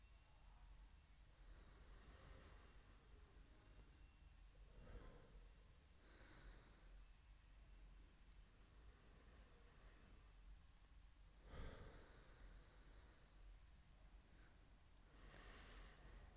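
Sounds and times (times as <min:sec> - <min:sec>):
soft steady hiss: 0:00.0 - 0:16.3
deep breathing: 0:01.4 - 0:03.9, 0:04.7 - 0:07.1, 0:11.4 - 0:13.5, 0:14.2 - 0:16.3.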